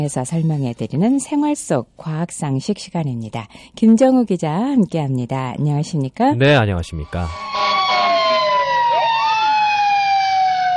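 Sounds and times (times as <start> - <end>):
speech: 0.0 - 7.6
emergency vehicle siren wailing: 7.0 - 10.7.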